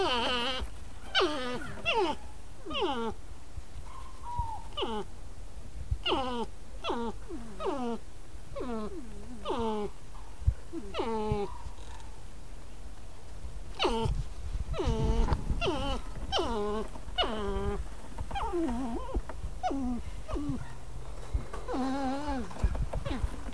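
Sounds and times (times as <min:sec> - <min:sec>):
North American porcupine giving rapid falling harmonic whines and squeals: 0:00.0 - 0:03.2, 0:04.0 - 0:05.1, 0:06.0 - 0:08.0, 0:08.6 - 0:09.9, 0:10.8 - 0:11.8, 0:13.8 - 0:20.8, 0:21.6 - 0:23.4.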